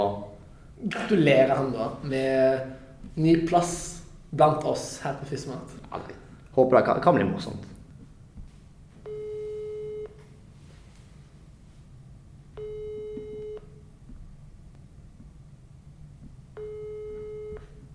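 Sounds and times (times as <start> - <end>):
speech: 0.0 - 7.7
telephone ringback tone while placing a phone call: 9.0 - 10.2, 12.6 - 13.8, 16.6 - 17.8.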